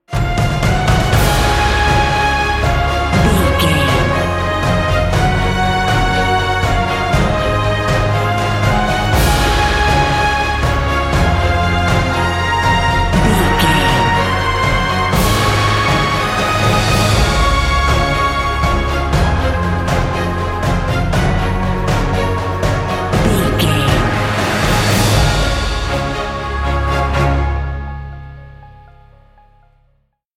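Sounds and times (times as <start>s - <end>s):
cinematic corporate music: 0.1s - 29.9s.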